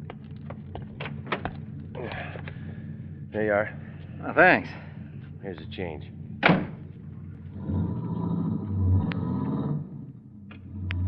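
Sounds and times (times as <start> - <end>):
rustling and shifting movement of someone climbing into a car: 0.0 - 8.9
low steady hum: 0.0 - 11.0
speech: 3.3 - 6.6
dull car door shutting: 6.4 - 6.8.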